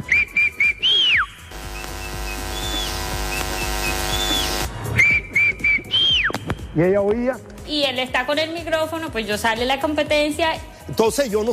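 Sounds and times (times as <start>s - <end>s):
person whistling a signal: 0.0s - 1.4s, 4.1s - 6.4s
steady droning noise: 1.5s - 4.7s
speech: 6.8s - 11.5s.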